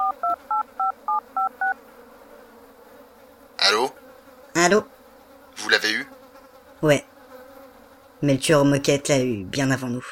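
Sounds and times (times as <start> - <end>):
touch-tone phone dialing beeps: 0.0 - 1.8
speech: 3.7 - 4.0, 4.7 - 4.9, 5.7 - 6.1, 6.8 - 7.1, 8.2 - 10.1.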